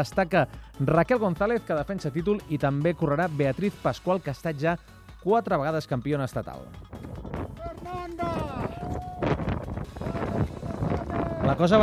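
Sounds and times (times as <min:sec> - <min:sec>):
speech: 0:00.0 - 0:06.9, 0:11.5 - 0:11.8
strong wind on Aconcagua mountain summit buffeting the microphone: 0:06.8 - 0:11.8.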